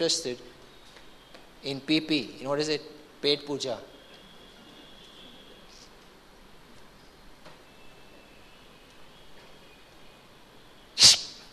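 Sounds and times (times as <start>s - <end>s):
speech: 0.0s - 0.6s, 1.6s - 4.0s
sneeze imitated by a voice: 11.0s - 11.4s.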